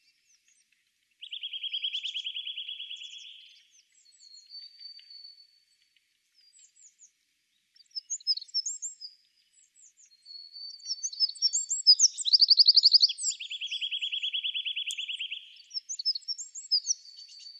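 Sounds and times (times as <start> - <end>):
Eurasian wren song with loud rapid trill: 1.2 - 3.6, 7.8 - 9.1, 9.8 - 17.5.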